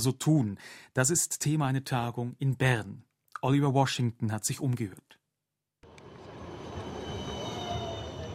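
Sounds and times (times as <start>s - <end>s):
speech: 0.0s - 5.2s
faint metallic whines: 5.9s - 8.3s
tram rumbling with a dense low mechanical roar at a city stop: 5.9s - 8.3s.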